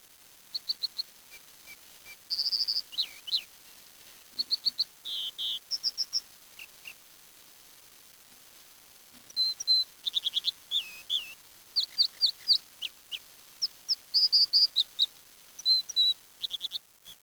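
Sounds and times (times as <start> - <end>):
birds chirping: 0.5 - 3.5, 4.4 - 7.0, 9.3 - 17.2.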